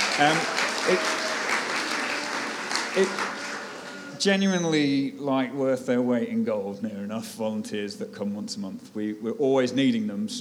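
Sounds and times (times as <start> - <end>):
audience applause: 0.0 - 4.7
speech: 0.2 - 1.2, 2.9 - 3.4, 4.2 - 10.3.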